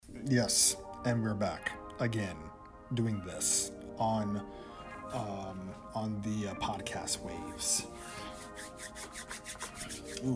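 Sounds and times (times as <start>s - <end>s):
speech: 0.3s - 9.0s, 10.2s - 10.3s
hands rubbing briskly together: 7.9s - 10.3s.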